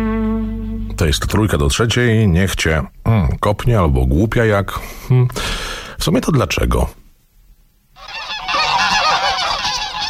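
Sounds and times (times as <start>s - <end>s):
speech: 1.0s - 7.0s
geese honking and cackling: 8.0s - 10.0s.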